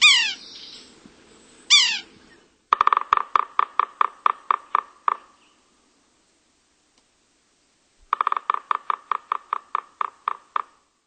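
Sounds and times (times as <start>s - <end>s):
red-naped sapsucker drumming: 2.7s - 5.4s, 8.0s - 10.9s.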